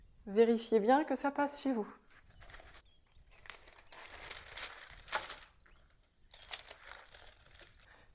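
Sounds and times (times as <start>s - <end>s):
speech: 0.2s - 2.0s
parchment paper crinkling as a sheet is laid on a baking tray: 2.1s - 8.1s.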